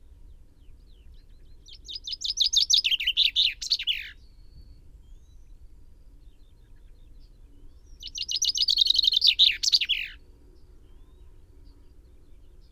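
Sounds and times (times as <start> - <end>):
common chaffinch Fringilla coelebs song: 0.7 - 4.4, 7.8 - 12.7.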